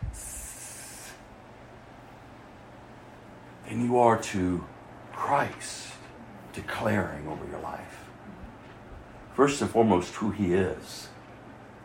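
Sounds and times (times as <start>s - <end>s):
voice imitating a snake's hiss: 0.0s - 1.3s
speech: 3.7s - 4.7s, 5.3s - 6.0s, 6.6s - 8.0s, 9.4s - 11.2s.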